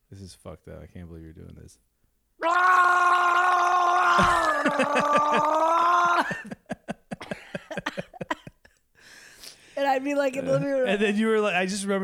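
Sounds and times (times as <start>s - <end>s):
speech: 0.1s - 3.0s, 4.2s - 6.5s, 9.8s - 12.0s
person imitating a yell from the bathroom: 2.4s - 6.4s
laughter: 4.2s - 8.7s.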